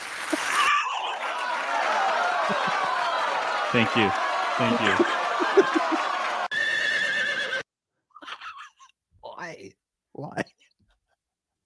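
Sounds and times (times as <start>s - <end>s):
laughter: 0.3s - 6.5s
speech: 2.5s - 2.9s, 3.7s - 6.1s
horse neighing: 6.5s - 7.6s.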